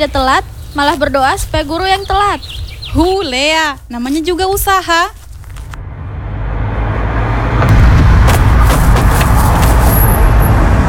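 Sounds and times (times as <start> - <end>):
speech: 0.0 - 5.2
road traffic rumbling: 0.0 - 10.8
cars passing with whooshes and clicks: 5.4 - 10.8.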